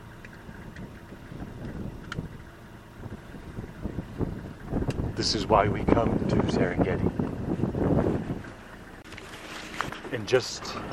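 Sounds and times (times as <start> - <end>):
safari vehicle engine rumbling as it pulls away from a water hole in the Serengeti: 0.0 - 10.9
wind buffeting the microphone: 0.4 - 9.0
speech: 5.2 - 8.3, 10.3 - 10.9.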